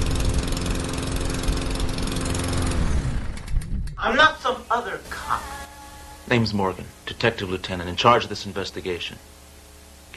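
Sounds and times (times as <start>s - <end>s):
small lawnmower engine running: 0.0s - 4.2s
speech: 4.0s - 5.6s, 6.3s - 9.4s.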